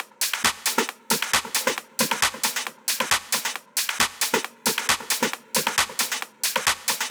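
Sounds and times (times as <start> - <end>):
drum and percussion loop: 0.0 - 7.0.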